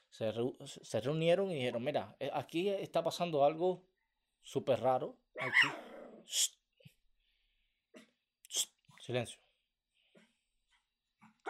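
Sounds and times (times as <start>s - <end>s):
speech: 0.1s - 6.6s, 8.5s - 9.4s
dog growling: 5.4s - 6.3s.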